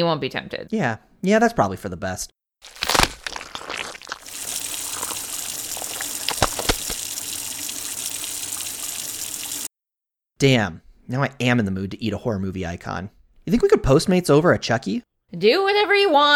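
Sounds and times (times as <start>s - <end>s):
speech: 0.0s - 2.8s, 10.4s - 16.3s
brief clunks and splashes: 2.7s - 8.0s
liquid pouring down a drain: 3.3s - 9.7s.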